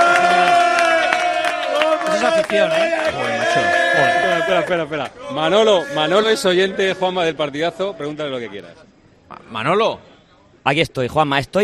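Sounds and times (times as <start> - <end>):
crowd cheering and whooping: 0.0 - 4.8
shouts rising above the crowd: 0.0 - 6.4
speech: 2.5 - 11.6.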